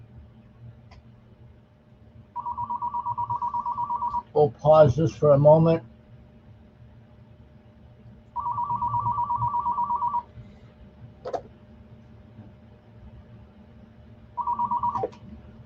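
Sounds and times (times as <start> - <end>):
telephone ringing electronically: 2.4 - 4.4, 8.4 - 10.3, 14.4 - 15.2
speech: 4.4 - 5.9.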